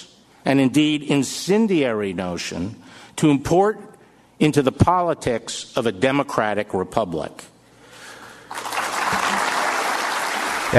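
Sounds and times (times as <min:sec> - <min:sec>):
speech: 0:00.4 - 0:07.5
audience applause after a line in a political speech: 0:08.5 - 0:10.7.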